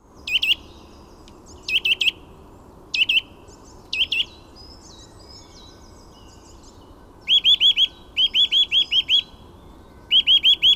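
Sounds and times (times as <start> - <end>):
faint steady background hiss: 0.0 - 10.7
Eurasian nuthatch Sitta europaea calling with loud ringing whistled notes: 0.2 - 2.3, 2.9 - 10.7.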